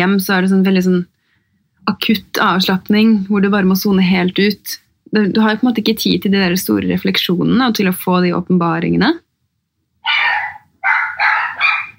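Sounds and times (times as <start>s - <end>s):
speech: 0.0s - 1.2s, 1.8s - 9.2s
two dogs barking: 10.0s - 11.9s.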